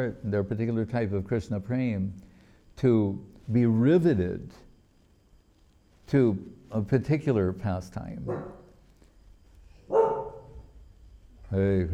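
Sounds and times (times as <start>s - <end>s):
speech: 0.0s - 4.6s, 6.1s - 8.6s, 11.5s - 11.9s
dog barking: 8.3s - 8.7s, 9.9s - 10.6s.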